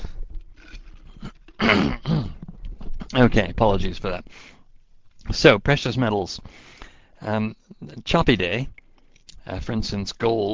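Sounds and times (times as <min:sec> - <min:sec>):
person with a frog in the throat clearing throat: 0:01.6 - 0:03.1
speech: 0:03.1 - 0:04.5, 0:05.3 - 0:08.8, 0:09.4 - 0:10.5.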